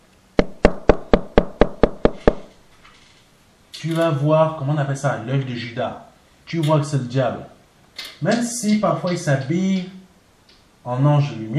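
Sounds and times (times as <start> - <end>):
firm knocking on a door: 0.4 - 2.5
speech: 3.8 - 7.6, 8.2 - 10.0, 10.8 - 11.5.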